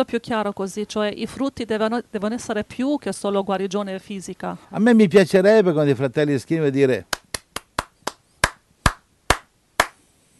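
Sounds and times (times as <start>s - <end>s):
speech: 0.0s - 7.2s
single pair of hands clapping: 7.1s - 10.0s.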